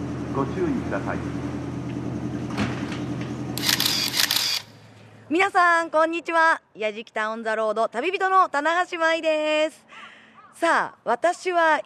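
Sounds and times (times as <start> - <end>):
steady low rumble of the idling train: 0.0 - 4.4
speech: 0.4 - 1.6, 5.3 - 9.9, 10.6 - 11.8.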